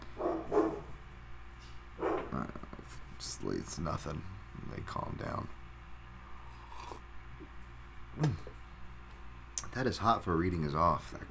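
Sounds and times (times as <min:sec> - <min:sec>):
dogs barking: 0:00.0 - 0:01.0, 0:02.0 - 0:02.6
low hum: 0:00.0 - 0:11.2
speech: 0:03.2 - 0:05.6, 0:08.2 - 0:08.6, 0:09.8 - 0:11.2.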